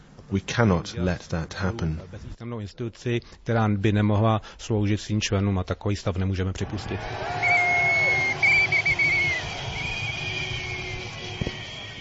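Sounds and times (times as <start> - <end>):
speech: 0.3 - 7.5
noisy outdoor protest crowd: 6.5 - 11.9
shrill sustained whistles: 6.8 - 11.9.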